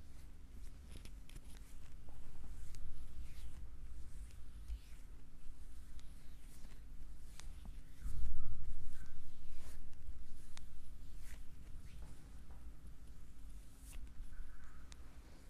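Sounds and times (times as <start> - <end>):
soft rubbing on skin during a foot massage: 0.0 - 14.9
steady low hum: 0.0 - 15.4.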